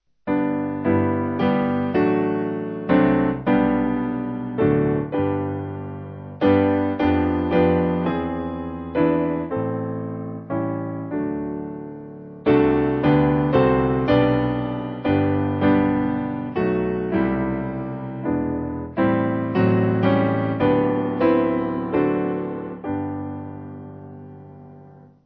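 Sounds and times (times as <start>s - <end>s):
simple piano hymn accompaniment: 0.3s - 25.2s.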